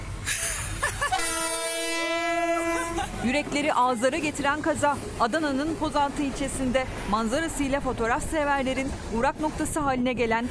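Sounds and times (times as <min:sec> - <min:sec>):
train passing on railway tracks: 0:00.0 - 0:10.4
laughter: 0:00.3 - 0:01.6, 0:02.5 - 0:04.2
train horn blaring: 0:01.1 - 0:03.1
speech: 0:03.2 - 0:10.4.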